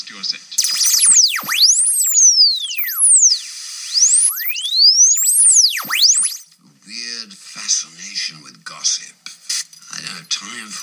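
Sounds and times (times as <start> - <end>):
speech: 0.1 - 1.6, 8.3 - 9.3, 10.0 - 10.8
broadcast interference whistles from foreign stations: 0.6 - 6.4.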